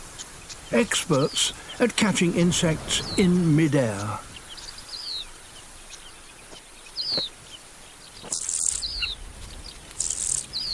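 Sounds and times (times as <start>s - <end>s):
carmine bee-eaters chirping on the African savanna: 0.0s - 10.7s
soft steady outdoor hiss: 0.0s - 10.7s
speech: 0.7s - 4.3s.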